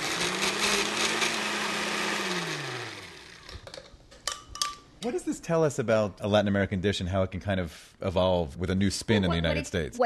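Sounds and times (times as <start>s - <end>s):
blender motor pureeing a sauce seasoned with oregano and allspice: 0.0s - 3.6s
speech: 5.0s - 10.0s.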